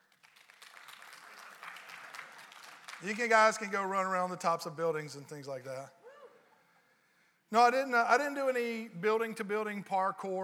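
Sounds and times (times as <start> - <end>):
audience at a morning gathering applauding: 0.0 - 3.4
speech: 3.0 - 6.0, 7.5 - 10.4.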